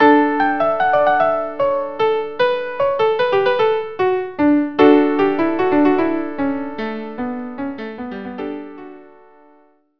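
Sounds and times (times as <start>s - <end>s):
violin melody: 0.0s - 7.4s.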